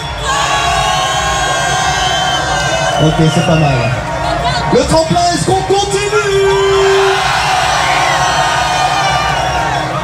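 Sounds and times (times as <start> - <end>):
big audience in upper section of a venue cheering loudly: 0.0 - 10.0
speech: 3.0 - 4.1, 4.7 - 6.9.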